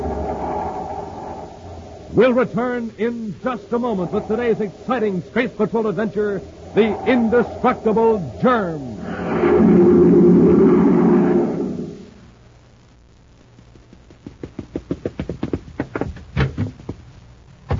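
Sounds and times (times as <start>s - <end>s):
roaring whoosh of a person rushing out the door: 0.0s - 12.2s
speech: 2.2s - 10.1s.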